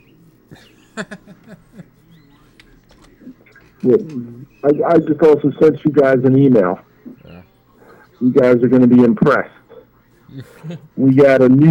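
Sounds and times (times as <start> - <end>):
laughter: 0.0 - 3.4, 10.2 - 11.5
speech: 0.5 - 2.0, 3.8 - 6.9, 8.2 - 9.6, 10.3 - 11.6
indistinct voices: 1.4 - 11.6
bird chirping faintly in the background: 1.8 - 8.3.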